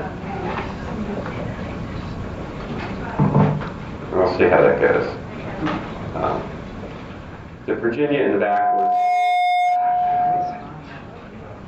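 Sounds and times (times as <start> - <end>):
murmur of noise: 0.0 - 11.6
speech: 4.4 - 6.4, 7.7 - 9.0
loud steady electronic alarm tone: 8.5 - 10.6.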